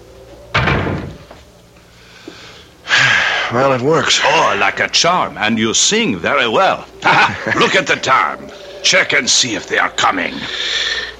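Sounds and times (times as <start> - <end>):
faint hum: 0.0 - 11.1
door shutting with heavy thud: 0.5 - 1.4
speech: 3.5 - 11.0
laughter: 6.5 - 9.4.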